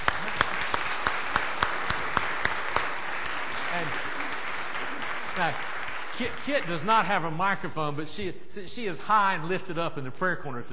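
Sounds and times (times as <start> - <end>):
church congregation applauding: 0.0 - 7.6
speech: 5.4 - 10.7.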